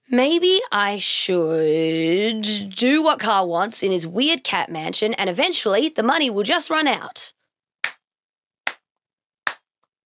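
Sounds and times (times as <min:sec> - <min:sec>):
speech: 0:00.1 - 0:07.4
hand claps: 0:07.8 - 0:09.7.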